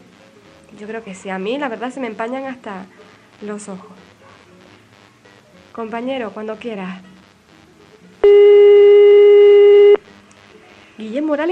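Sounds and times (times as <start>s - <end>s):
speech: 0.8s - 4.0s, 5.8s - 7.1s, 11.0s - 11.4s
telephone call tone while dialing a number: 8.2s - 10.0s.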